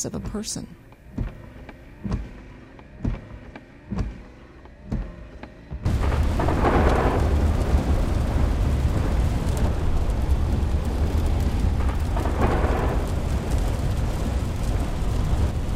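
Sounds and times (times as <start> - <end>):
speech: 0.0 - 0.8
soft regular thumps: 1.0 - 2.4, 3.0 - 5.9
heavy rain on a gray rainy day on State Highway Alternate 45: 5.8 - 15.7.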